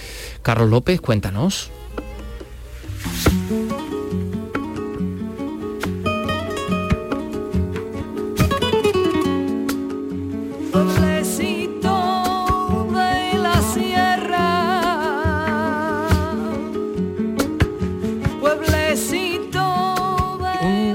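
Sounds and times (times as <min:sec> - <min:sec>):
speech: 0:00.4 - 0:01.8
strummed flamenco guitar: 0:01.7 - 0:20.9
woman singing flamenco fandango in a wavering ornamented voice: 0:10.6 - 0:20.9.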